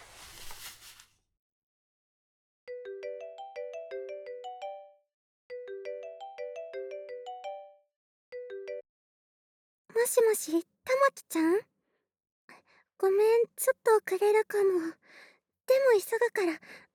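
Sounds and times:
rustling: 0:00.0 - 0:01.2
bright melodic phone ringing tone of a call to a friend: 0:02.7 - 0:07.8, 0:08.4 - 0:08.8
speech: 0:10.0 - 0:11.7, 0:13.0 - 0:16.8.

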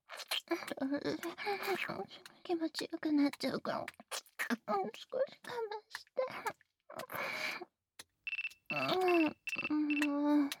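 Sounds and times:
speech: 0:00.5 - 0:07.7, 0:08.8 - 0:10.5
phone ringing in quick electronic pulses: 0:08.3 - 0:10.1.

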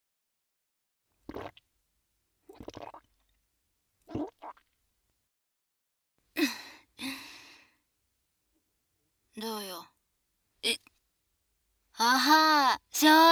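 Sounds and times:
woman gulping a drink: 0:01.2 - 0:01.6, 0:02.5 - 0:03.4, 0:04.1 - 0:04.8
speech: 0:09.4 - 0:09.9, 0:10.6 - 0:10.9, 0:12.0 - 0:13.2.

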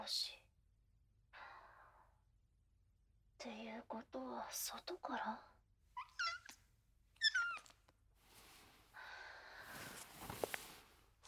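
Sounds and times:
speech: 0:00.1 - 0:00.4, 0:03.4 - 0:05.5
cat meowing: 0:06.0 - 0:06.6, 0:07.2 - 0:07.7
soft rustling and shuffling noises: 0:07.4 - 0:11.2.

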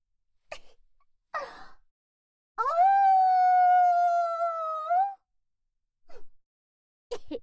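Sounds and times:
human voice imitating a wolf howling: 0:02.6 - 0:05.2.

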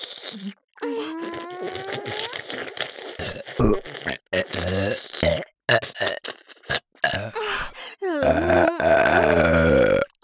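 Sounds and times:
speech: 0:00.3 - 0:00.6
loud burps: 0:03.2 - 0:10.1.

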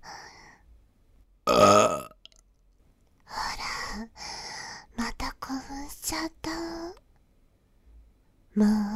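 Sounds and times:
loud low croaky burp: 0:01.5 - 0:02.4
speech: 0:08.6 - 0:08.8.

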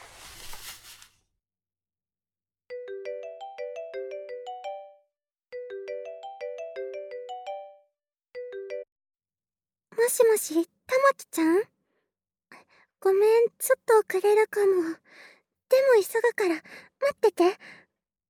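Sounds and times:
rustling: 0:00.0 - 0:01.2
phone electronic melodic ringtone while placing a call: 0:02.7 - 0:08.9
speech: 0:10.0 - 0:11.7, 0:13.0 - 0:17.8.

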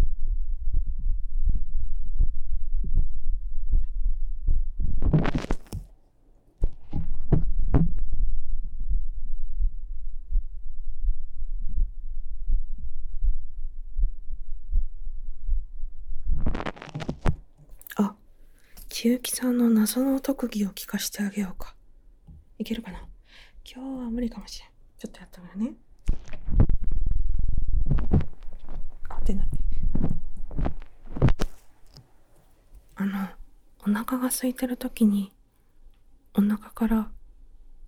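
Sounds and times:
heartbeat heard through the chest: 0:00.0 - 0:05.9, 0:06.6 - 0:17.6, 0:26.1 - 0:31.6
speech: 0:19.0 - 0:21.8, 0:22.6 - 0:23.1, 0:23.7 - 0:26.2, 0:29.3 - 0:29.6, 0:34.0 - 0:35.4, 0:36.4 - 0:37.2.

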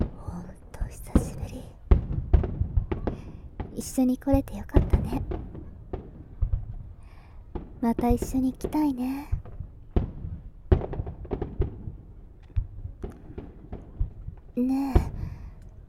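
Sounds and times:
soft whispery voice speaking quietly: 0:00.0 - 0:01.8
fireworks bursting in the sky: 0:00.0 - 0:15.8
speech: 0:03.8 - 0:05.4, 0:07.8 - 0:09.4, 0:14.6 - 0:15.1.

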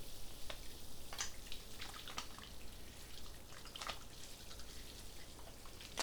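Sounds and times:
steady hiss: 0:00.0 - 0:01.2
shampoo worked into a lather between hands: 0:00.5 - 0:06.0.

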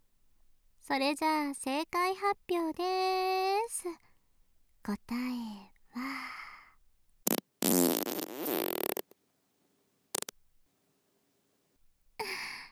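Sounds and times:
speech: 0:00.9 - 0:04.1, 0:04.8 - 0:06.4
fart: 0:07.2 - 0:09.1, 0:10.1 - 0:10.4.

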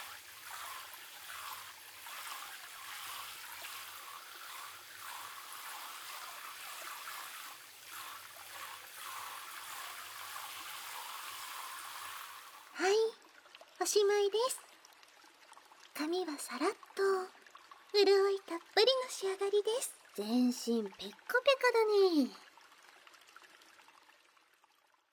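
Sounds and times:
water poured to rinse someone's feet: 0:00.0 - 0:12.8
speech: 0:13.9 - 0:14.7, 0:16.0 - 0:22.4.

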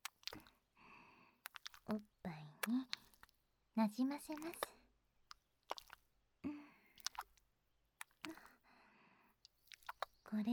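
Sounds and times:
thick seaweed-based lotion pouring onto the chest: 0:00.0 - 0:00.6, 0:01.4 - 0:03.5, 0:04.2 - 0:06.1, 0:06.8 - 0:08.6, 0:09.4 - 0:10.3
speech: 0:01.9 - 0:03.0, 0:03.8 - 0:04.8, 0:10.4 - 0:10.5.

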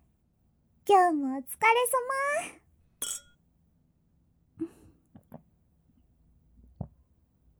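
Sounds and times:
speech: 0:00.9 - 0:02.6
drinking glasses clinking in a toast: 0:03.0 - 0:03.4.

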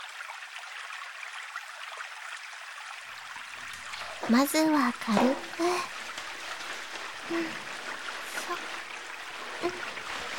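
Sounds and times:
water pouring to rinse a man's broad back: 0:03.0 - 0:10.3
speech: 0:04.3 - 0:05.9, 0:07.3 - 0:07.6, 0:09.6 - 0:09.9.

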